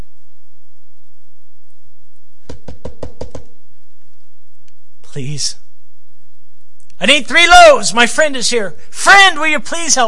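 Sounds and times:
knocking on a wooden door: 2.5 - 3.5
speech: 5.2 - 5.6, 7.0 - 10.0.

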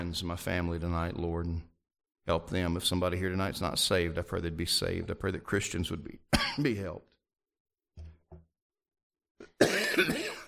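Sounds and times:
speech: 0.1 - 1.7, 2.3 - 7.1, 9.6 - 10.3
person coughing harshly: 6.3 - 6.7, 9.4 - 10.4.

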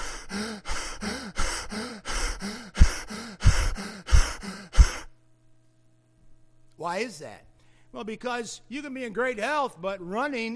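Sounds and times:
heavy panting breaths after running a mile at full pace: 0.0 - 5.1
speech: 6.9 - 10.5.

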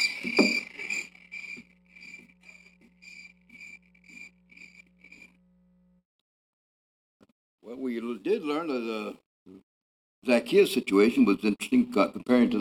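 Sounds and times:
crickets chirping: 0.0 - 5.4
speech: 7.7 - 12.5.

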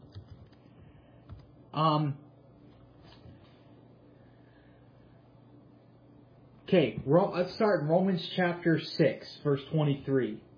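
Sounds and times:
typing on a computer keyboard: 0.0 - 0.6
speech: 1.7 - 2.2, 6.7 - 10.5.

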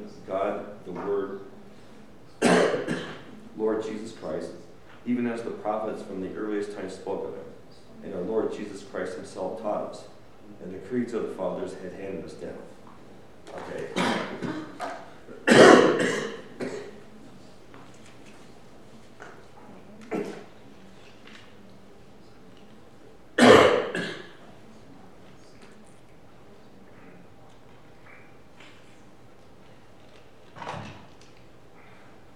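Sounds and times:
speech: 0.0 - 1.5, 3.6 - 12.7, 13.5 - 14.7
person coughing: 2.4 - 3.3, 14.0 - 17.0, 23.4 - 24.4
throat clearing: 2.4 - 3.4, 13.9 - 17.0, 20.0 - 20.5, 23.4 - 24.4, 28.0 - 28.8.

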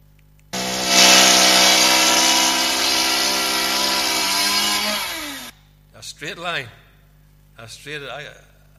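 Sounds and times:
loud chainsaw cutting wood for building work: 0.6 - 5.5.

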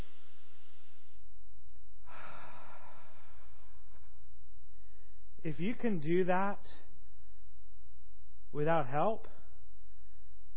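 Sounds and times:
church congregation breathing in deeply together: 0.0 - 1.4, 2.0 - 5.4
speech: 5.4 - 6.9, 8.5 - 9.4.

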